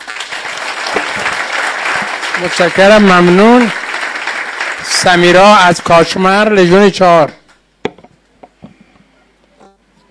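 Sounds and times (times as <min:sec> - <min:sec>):
audience applauding: 0:00.0 - 0:06.1
speech: 0:02.4 - 0:03.8, 0:04.9 - 0:07.4.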